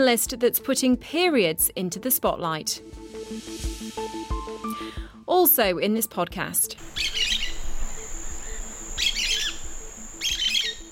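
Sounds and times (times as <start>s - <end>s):
speech: 0.0s - 4.2s, 5.3s - 7.0s
small domestic bird chirping: 6.8s - 10.8s.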